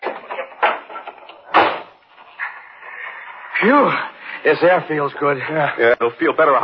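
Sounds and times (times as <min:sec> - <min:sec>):
door opening and closing: 0:00.0 - 0:02.5
speech: 0:03.6 - 0:06.6.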